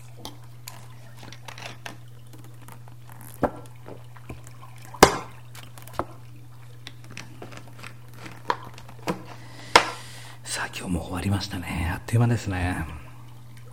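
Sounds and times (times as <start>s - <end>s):
person sipping hojicha tea: 0.0s - 10.4s
steady low electrical hum: 0.0s - 13.7s
speech: 11.0s - 13.0s.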